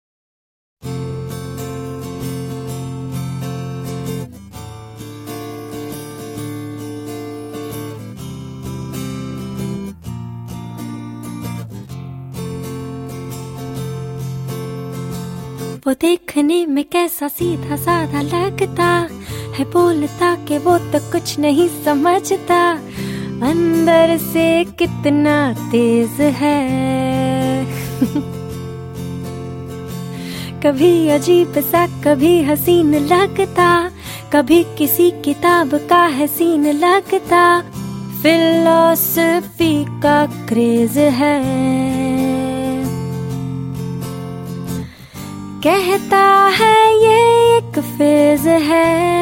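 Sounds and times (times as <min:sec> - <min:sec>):
woman singing with acoustic accompaniment: 0:15.2 - 0:49.2.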